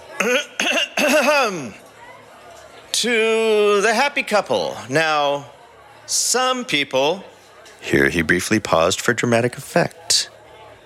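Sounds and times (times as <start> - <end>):
speech: 0.2 - 0.6, 1.3 - 1.8, 3.0 - 10.3
person clearing throat loudly and exaggeratedly: 0.2 - 1.8.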